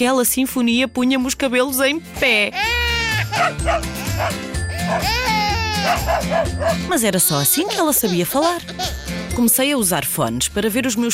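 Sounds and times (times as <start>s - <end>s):
speech: 0.0s - 2.8s, 3.4s - 11.1s
dog whining with high wavering cries: 3.2s - 6.9s
dog barking: 3.4s - 5.2s, 5.8s - 6.9s.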